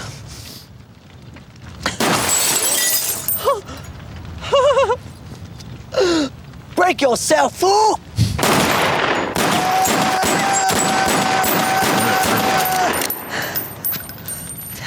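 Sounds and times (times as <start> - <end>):
gunshots from a movie scene: 2.0 - 3.3, 8.4 - 13.7
glass shattering: 2.0 - 3.9, 9.2 - 14.8
speech: 6.9 - 8.1.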